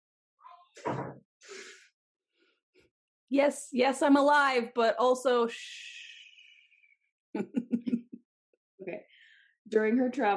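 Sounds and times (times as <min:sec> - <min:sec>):
door creaking: 0:00.5 - 0:01.2
door shutting with a thud: 0:00.8 - 0:01.2
speech: 0:03.3 - 0:05.9, 0:07.4 - 0:07.6, 0:08.8 - 0:09.1, 0:09.7 - 0:10.3.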